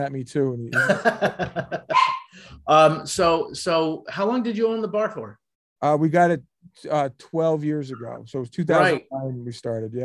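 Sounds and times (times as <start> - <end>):
speech: 0.0 - 10.0
laughter: 0.7 - 2.1
dogs barking sharp yappy barks: 1.9 - 2.4.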